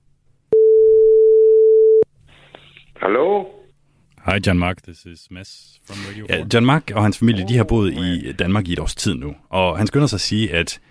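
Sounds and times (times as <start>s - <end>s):
telephone ringing tone while calling: 0.6s - 2.0s
speech: 3.0s - 3.6s, 4.3s - 10.8s.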